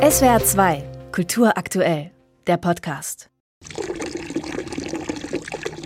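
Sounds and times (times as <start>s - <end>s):
speech: 0.1s - 3.8s
water splashing from a marble-clad apse in an exhibition: 3.6s - 5.8s.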